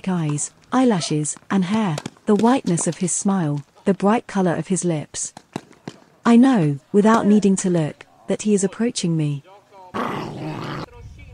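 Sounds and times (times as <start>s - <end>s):
speech: 0.0s - 5.4s, 6.2s - 9.5s
dog growling low: 10.0s - 10.9s.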